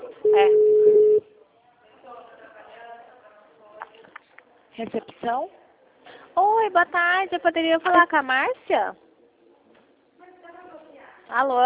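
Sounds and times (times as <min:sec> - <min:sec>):
telephone ringback tone while placing a call: 0:00.2 - 0:01.2
speech: 0:00.3 - 0:00.9, 0:04.8 - 0:05.6, 0:06.6 - 0:09.0, 0:11.3 - 0:11.6.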